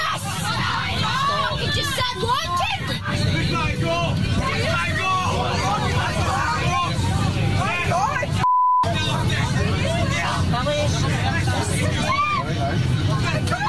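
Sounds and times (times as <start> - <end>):
group of men chattering on a plane: 0.2 - 13.6
censor bleep tone: 8.4 - 8.9.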